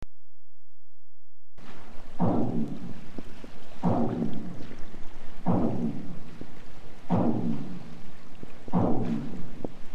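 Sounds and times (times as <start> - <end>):
distant pile driving for offshore wind farm construction: 2.1 - 6.4, 7.0 - 8.0, 8.6 - 9.7.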